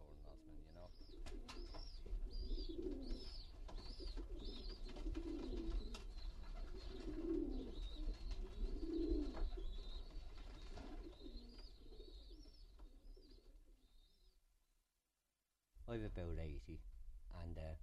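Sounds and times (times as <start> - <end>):
pigeons cooing in a pigeon shed: 0.1 - 13.8
speech: 16.0 - 16.9, 17.5 - 17.8.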